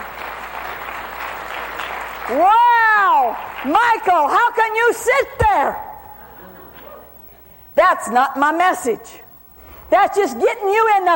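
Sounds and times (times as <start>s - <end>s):
audience hand clapping at a church sermon: 0.0s - 3.8s
speech: 2.3s - 2.6s, 3.3s - 5.8s, 7.8s - 9.2s, 9.9s - 11.1s.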